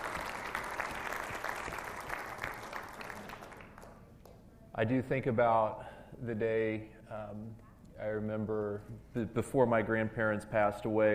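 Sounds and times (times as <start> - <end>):
room full of people clapping steadily: 0.0 - 4.0
speech: 4.8 - 11.1.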